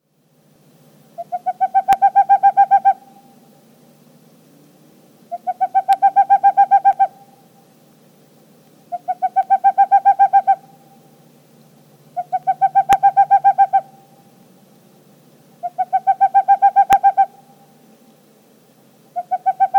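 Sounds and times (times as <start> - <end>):
Boreal Owl calling: 1.1 - 3.6, 5.3 - 7.7, 8.8 - 11.2, 12.1 - 14.4, 15.5 - 17.8, 19.1 - 19.7.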